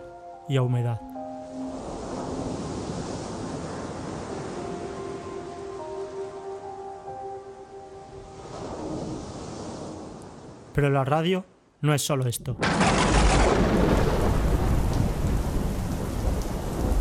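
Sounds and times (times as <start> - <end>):
speech: 0.5 - 1.1, 10.8 - 13.9
ocean waves washing on shore: 1.5 - 7.2, 8.1 - 10.8, 12.6 - 17.0.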